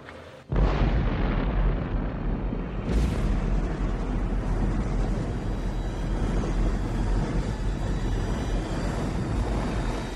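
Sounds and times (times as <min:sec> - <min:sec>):
nuclear test bomb explosion: 0:00.5 - 0:09.7.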